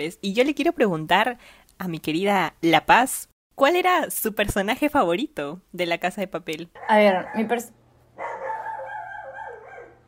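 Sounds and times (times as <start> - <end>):
speech: 0.0 - 7.8
dog barking at home: 6.8 - 7.6, 8.2 - 10.0.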